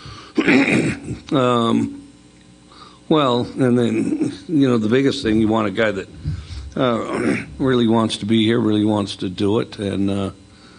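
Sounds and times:
rough cough: 0:00.4 - 0:01.2
voiced throat-clearing grunt: 0:00.4 - 0:01.9, 0:03.8 - 0:04.5, 0:06.3 - 0:07.6
speech: 0:00.4 - 0:02.0, 0:03.1 - 0:10.4.

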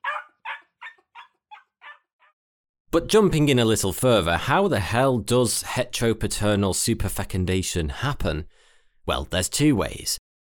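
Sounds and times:
dog barking: 0:00.0 - 0:02.4
speech: 0:02.9 - 0:10.2.

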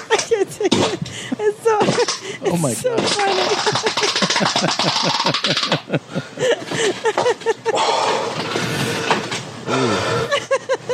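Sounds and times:
laughter: 0:00.1 - 0:07.9, 0:09.9 - 0:10.9
man breathing heavily while straining on the toilet: 0:01.0 - 0:01.4, 0:02.2 - 0:02.8, 0:06.0 - 0:07.0, 0:07.7 - 0:10.4
man grunting and groaning while straining on the toilet with constipation: 0:02.4 - 0:03.0
speech: 0:02.5 - 0:09.1.

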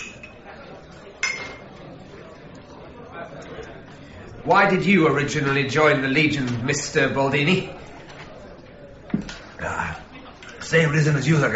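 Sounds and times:
low murmur of chatter: 0:00.0 - 0:11.5
wine glasses filled with Algerian wine clinking in a toast: 0:01.2 - 0:01.7
speech: 0:04.4 - 0:07.8, 0:10.7 - 0:11.5.

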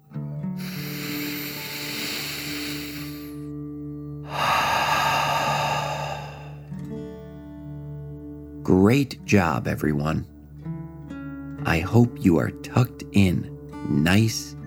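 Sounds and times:
deep breath in and out in a calming relaxation exercise for children: 0:00.6 - 0:03.5, 0:04.2 - 0:06.8
speech: 0:08.7 - 0:10.3, 0:11.9 - 0:14.6.

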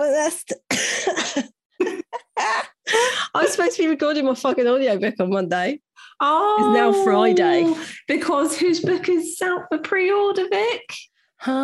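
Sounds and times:
speech: 0:00.1 - 0:00.6, 0:03.7 - 0:11.6
person coughing harshly: 0:00.7 - 0:02.2.

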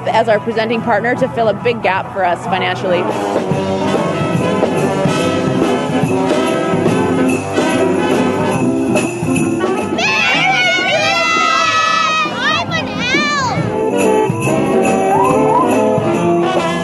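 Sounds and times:
speech: 0:00.0 - 0:03.9
crowd at a community event chattering and cheering: 0:00.0 - 0:16.8
excited children shouting and squealing: 0:09.9 - 0:13.8, 0:15.1 - 0:16.0.

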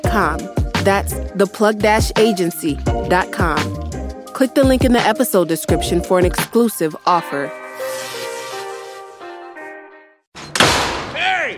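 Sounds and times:
speech: 0:00.0 - 0:08.0
door slamming shut: 0:10.4 - 0:11.5.

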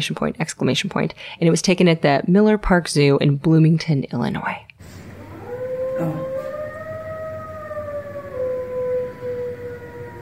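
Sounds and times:
speech: 0:00.0 - 0:04.6
wailing fire truck siren: 0:05.0 - 0:10.2
wolf howling: 0:05.2 - 0:10.2.

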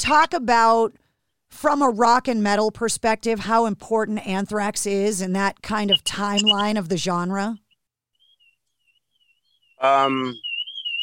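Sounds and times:
speech: 0:00.0 - 0:07.6, 0:09.8 - 0:10.5
car alarm tone outside: 0:05.9 - 0:06.8.

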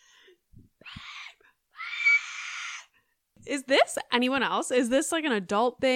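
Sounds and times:
person attempting a weak scream: 0:00.8 - 0:02.9
speech: 0:03.4 - 0:05.9.

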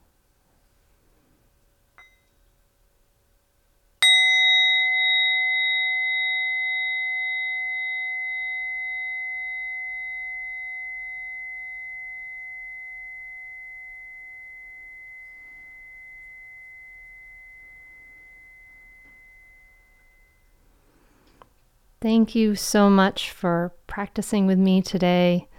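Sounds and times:
meditation bell struck at the end of a meditation: 0:04.0 - 0:20.8
speech: 0:22.0 - 0:25.5.

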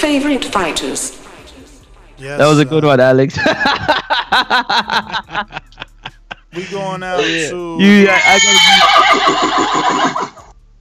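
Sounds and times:
speech: 0:00.0 - 0:01.2, 0:02.2 - 0:05.7, 0:06.6 - 0:10.4
laughter: 0:03.3 - 0:10.3
horse whinnying: 0:08.0 - 0:10.5.

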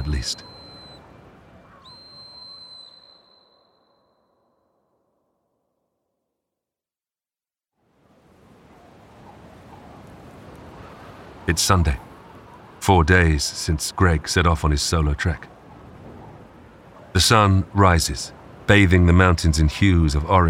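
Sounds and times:
speech: 0:00.1 - 0:00.5, 0:11.5 - 0:12.1, 0:12.8 - 0:15.6, 0:17.2 - 0:20.4
shrill high emergency whistle blast: 0:00.2 - 0:01.0, 0:01.9 - 0:04.5.

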